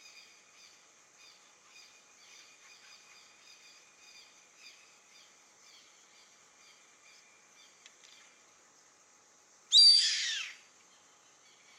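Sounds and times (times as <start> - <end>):
yellow-headed caracara Milvago chimachima raspy scream: 9.7 - 10.6.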